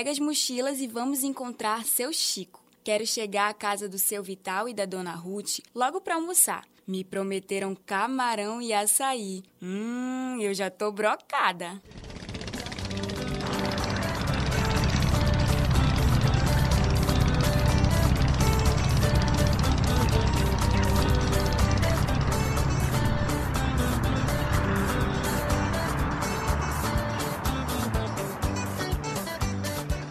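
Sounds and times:
speech: 0:00.0 - 0:12.1
speedboat motor droning on a river trip: 0:11.9 - 0:30.0.

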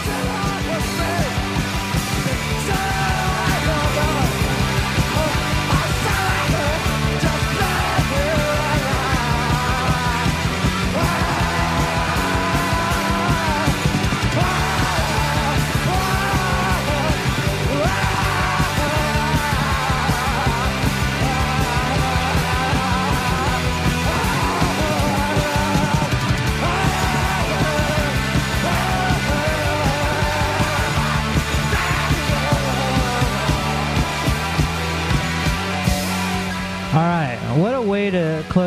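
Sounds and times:
distorted guitars on a 1984 punk rock recording: 0:00.0 - 0:38.6
driving drums on a 1984 punk rock recording: 0:00.0 - 0:38.6.

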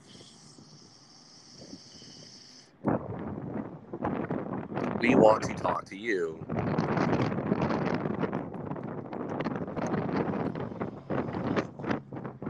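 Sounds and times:
wind buffeting a microphone on a windy day: 0:00.0 - 0:12.4
speech: 0:05.0 - 0:06.7.

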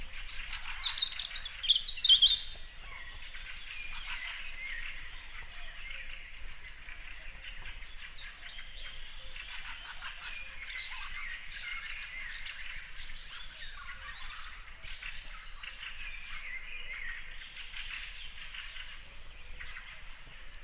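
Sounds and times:
European robin singing at dawn: 0:00.0 - 0:20.6
dawn chorus of other birds: 0:00.0 - 0:20.6.

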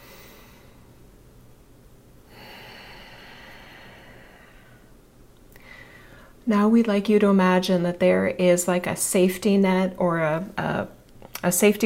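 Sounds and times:
slow deep breath during a guided relaxation exercise: 0:00.0 - 0:00.9, 0:02.3 - 0:05.0, 0:05.6 - 0:06.4
speech: 0:06.5 - 0:11.8.

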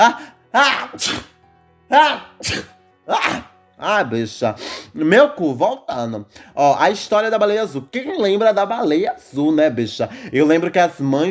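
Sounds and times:
speech: 0:00.0 - 0:01.3, 0:01.9 - 0:11.2
person sneezing: 0:00.0 - 0:01.4, 0:02.0 - 0:03.5.

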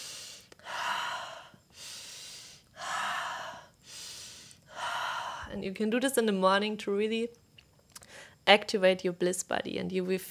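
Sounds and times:
nasal inhales during an upper-body circling exercise: 0:00.0 - 0:05.5
speech: 0:05.5 - 0:07.4, 0:08.5 - 0:10.2.

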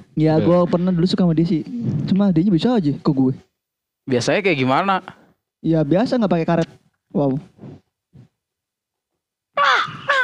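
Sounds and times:
speech: 0:00.2 - 0:07.8
person mimicking a crow with harsh raspy caws: 0:09.6 - 0:10.2.

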